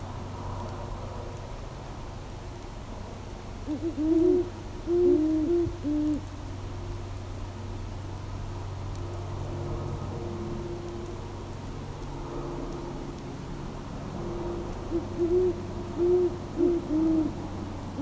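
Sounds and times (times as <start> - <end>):
speech: 3.7 - 5.0
great horned owl Bubo virginianus giving deep hooting phrases: 3.7 - 6.3, 14.9 - 17.4
low rumbling hum: 4.3 - 18.0.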